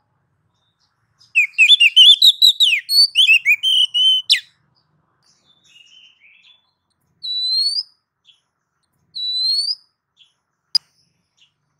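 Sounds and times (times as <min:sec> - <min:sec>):
female oriental magpie-robin calling to a male: 0:01.4 - 0:04.5, 0:07.2 - 0:07.9, 0:09.2 - 0:09.8.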